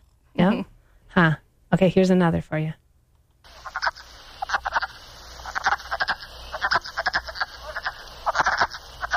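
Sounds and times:
hiss: 0:00.0 - 0:09.1
speech: 0:00.4 - 0:02.8
chorus of wood frogs calling in clucking duck-like croaks: 0:03.4 - 0:09.1.

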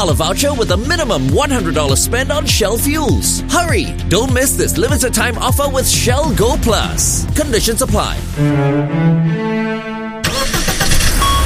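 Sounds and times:
speech: 0:00.0 - 0:10.0
car engine roaring into a rough rumbling run: 0:03.2 - 0:11.4
car engine starting: 0:06.1 - 0:11.4
car engine cranking: 0:10.2 - 0:11.4.

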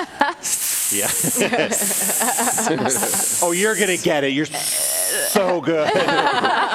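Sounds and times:
laughter: 0:00.0 - 0:04.0, 0:05.2 - 0:06.7
long loud hisses mixed with voiced sounds: 0:00.4 - 0:05.6
speech: 0:00.9 - 0:06.7.

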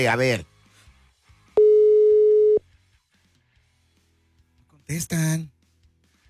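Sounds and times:
speech: 0:00.0 - 0:00.5, 0:04.9 - 0:05.6
telephone line tone after operator message: 0:01.6 - 0:02.6.

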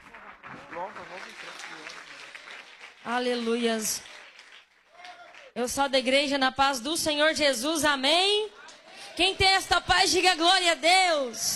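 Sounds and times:
church audience hand clapping: 0:00.0 - 0:05.7, 0:08.7 - 0:11.5
speech: 0:03.1 - 0:04.1, 0:05.6 - 0:08.5, 0:09.2 - 0:11.5.

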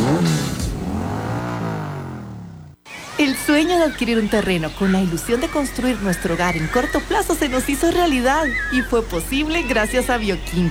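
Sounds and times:
motorcycle engine revving: 0:00.0 - 0:03.2
laughter: 0:02.9 - 0:10.6
speech: 0:03.4 - 0:10.6.

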